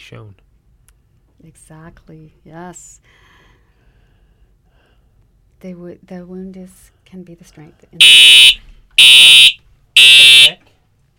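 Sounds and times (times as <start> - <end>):
speech: 0.1 - 0.4, 1.4 - 3.3, 5.6 - 9.4
fire alarm sounding high-pitched electronic tones: 8.0 - 10.6.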